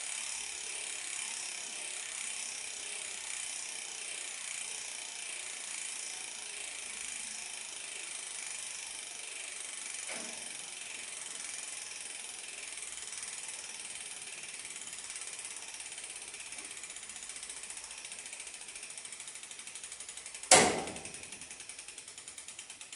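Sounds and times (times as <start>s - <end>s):
new bicycle freewheel ticking as the wheel coasts: 0.0s - 22.9s
sharp loud clack: 20.5s - 21.2s.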